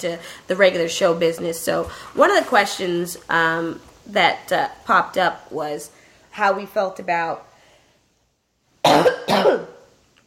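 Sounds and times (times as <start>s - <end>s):
speech: 0.0s - 7.5s, 8.9s - 9.7s
harsh coughing and throat clearing: 8.8s - 9.9s.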